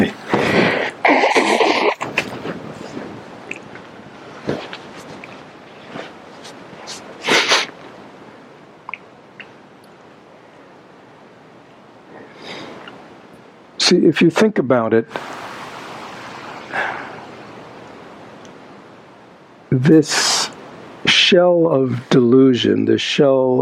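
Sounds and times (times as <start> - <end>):
loud nose blowing: 0.4 - 3.0, 6.8 - 7.8
rustling and handling noises: 2.0 - 8.0
speech: 14.1 - 15.4, 19.7 - 20.2, 21.3 - 23.6.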